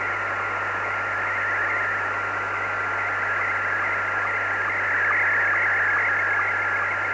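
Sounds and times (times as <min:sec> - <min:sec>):
SSTV slow scan television signal: 0:00.0 - 0:07.1.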